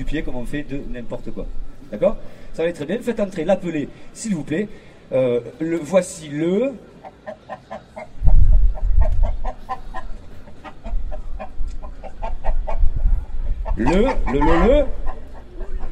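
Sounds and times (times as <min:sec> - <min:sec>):
speech: 0:00.0 - 0:06.9, 0:13.8 - 0:15.0
chickens clucking: 0:06.8 - 0:15.9.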